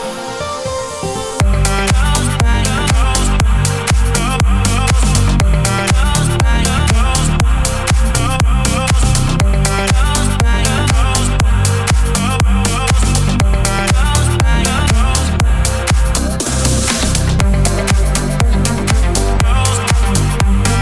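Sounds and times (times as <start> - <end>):
ambience: 0.1 - 20.8.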